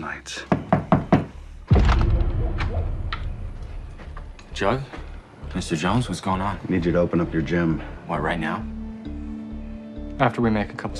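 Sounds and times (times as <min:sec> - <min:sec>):
speech: 0:00.1 - 0:00.5, 0:04.6 - 0:08.8, 0:10.2 - 0:10.9
knocks on a wooden door at night: 0:00.5 - 0:01.3
heavy thump: 0:01.7 - 0:05.2
low rumbling tone: 0:01.7 - 0:05.4.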